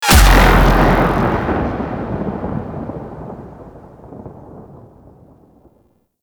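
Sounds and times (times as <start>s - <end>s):
game energy beam firing: 0.0s - 3.2s.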